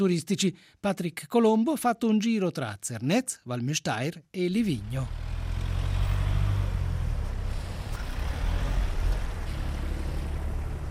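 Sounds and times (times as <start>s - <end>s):
speech: 0.0s - 5.3s
engines of cars and coaches crawling in traffic: 4.6s - 10.8s
road noise: 4.6s - 10.8s.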